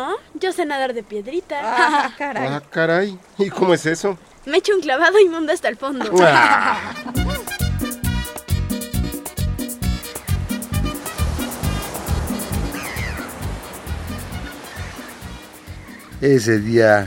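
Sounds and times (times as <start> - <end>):
speech: 0.0 - 7.3, 16.2 - 17.0
ocean waves rolling onto a shore: 0.0 - 17.0
laughter: 6.0 - 7.6.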